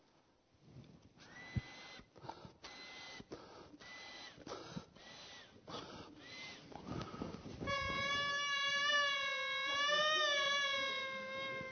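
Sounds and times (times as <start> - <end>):
symphonia goatskin bagpipe playing: 7.6 - 11.6.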